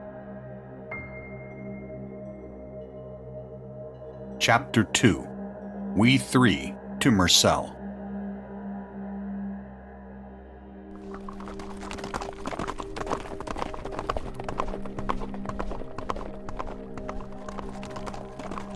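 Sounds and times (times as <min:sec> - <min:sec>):
speech: 0:04.4 - 0:05.3, 0:06.0 - 0:07.8
horses galloping: 0:11.0 - 0:18.7.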